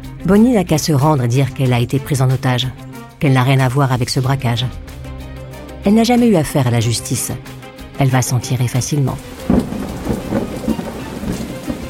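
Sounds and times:
speech: 0:00.2 - 0:04.9, 0:05.8 - 0:09.8
steady rain pouring: 0:08.9 - 0:11.8
low rumbling thunder: 0:09.3 - 0:11.8.

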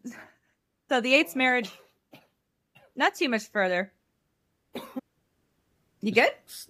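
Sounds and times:
speech: 0:00.9 - 0:01.8, 0:03.0 - 0:04.0, 0:06.0 - 0:06.6
single sharp cough: 0:04.8 - 0:05.0.

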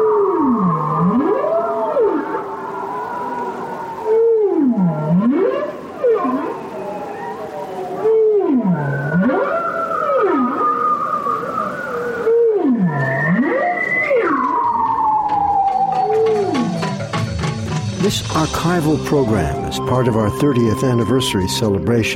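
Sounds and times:
deep swooping whale moans under sea ice: 0:00.0 - 0:17.3
higher sliding tonal whale cries under sea ice: 0:00.0 - 0:19.5
speech: 0:18.4 - 0:22.1.

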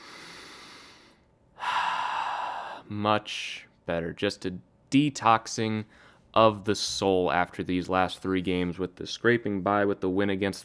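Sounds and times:
big deep breath: 0:00.0 - 0:02.9, 0:05.9 - 0:06.3
speech: 0:02.9 - 0:10.6.

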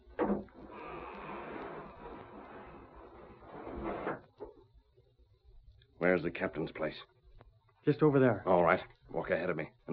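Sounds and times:
gate creaking and scraping as it is opened: 0:00.2 - 0:04.4
speech: 0:06.0 - 0:07.2, 0:07.9 - 0:09.9.

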